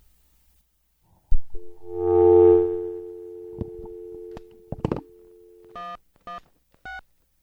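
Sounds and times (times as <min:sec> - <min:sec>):
short telephone beeps: 0:01.6 - 0:05.9
steady telephone dial tone hum on a grounded line: 0:01.6 - 0:05.9
telephone line clicks: 0:03.5 - 0:05.8.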